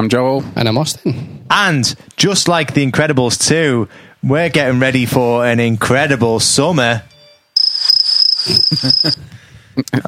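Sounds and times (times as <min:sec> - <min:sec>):
speech: 0:00.0 - 0:07.1, 0:08.4 - 0:10.0
cricket chirping in a high-pitched trill: 0:07.6 - 0:09.2.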